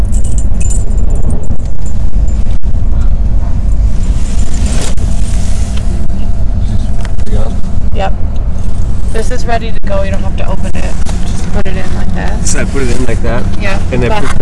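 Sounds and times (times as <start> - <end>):
keys jangling as they are handed over: 0.0 - 2.4
steady loud low rumble: 0.0 - 14.4
speech: 9.2 - 14.4.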